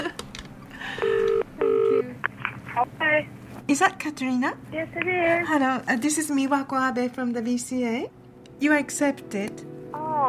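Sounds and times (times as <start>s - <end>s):
electronic telephone dialing tones: 1.0s - 2.0s
speech: 3.1s - 10.2s.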